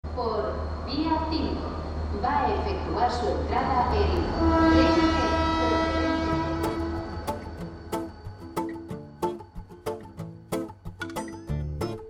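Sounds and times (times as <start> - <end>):
speech: 0.2 - 5.4
arriving train horn-like drone: 4.2 - 9.4.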